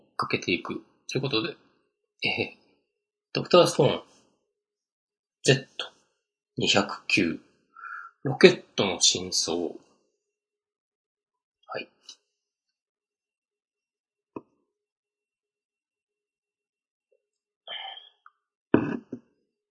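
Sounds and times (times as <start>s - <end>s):
speech: 0.2s - 1.6s, 2.2s - 2.6s, 3.4s - 4.2s, 5.4s - 5.9s, 6.6s - 7.5s, 8.2s - 9.8s, 11.7s - 11.9s
person clearing throat after sipping iced coffee: 18.8s - 19.2s.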